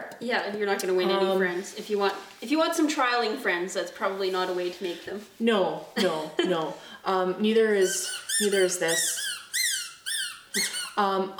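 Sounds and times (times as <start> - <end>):
speech: 0.2 - 9.3, 10.6 - 11.3
squeaky toy being squeezed: 7.8 - 11.0.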